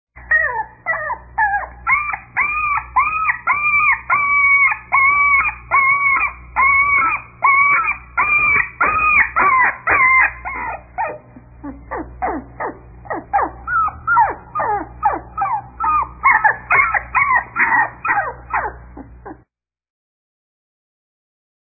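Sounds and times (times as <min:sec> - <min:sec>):
puppies crying: 0:00.2 - 0:19.5.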